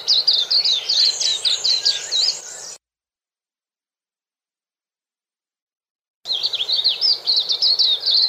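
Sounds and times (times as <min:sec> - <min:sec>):
white-eye giving a lively high twittering song: 0:00.0 - 0:02.8, 0:06.3 - 0:08.2.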